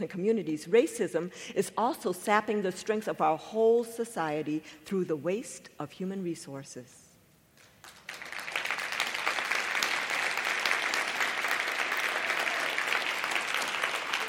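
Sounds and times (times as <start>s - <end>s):
speech: 0.0s - 7.0s
room full of people applauding: 7.8s - 14.2s.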